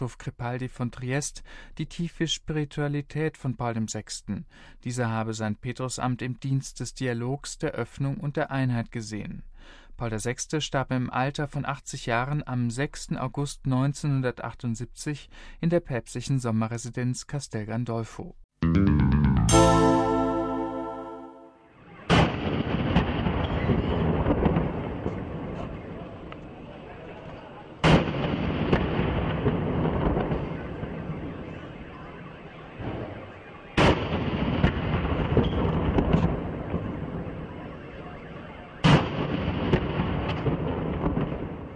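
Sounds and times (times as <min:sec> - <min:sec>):
speech: 0:00.0 - 0:19.6
musical tone: 0:18.6 - 0:21.7
ceremonial cannon shots of a 21-gun salute in Peru: 0:22.1 - 0:25.5, 0:27.8 - 0:31.3, 0:33.8 - 0:37.5, 0:38.8 - 0:41.7.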